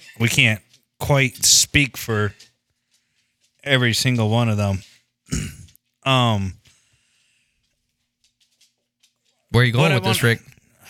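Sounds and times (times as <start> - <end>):
speech: 0.2 - 2.5, 3.6 - 6.6, 9.5 - 10.8
person clearing throat with a voiced rasp: 5.3 - 5.7
person giving a rough breathy cough: 5.3 - 5.7.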